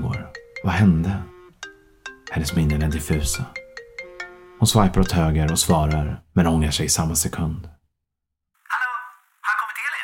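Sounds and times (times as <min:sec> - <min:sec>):
mobile phone ringtone: 0:00.0 - 0:06.2
speech: 0:00.6 - 0:01.3, 0:02.3 - 0:03.6, 0:04.6 - 0:07.8.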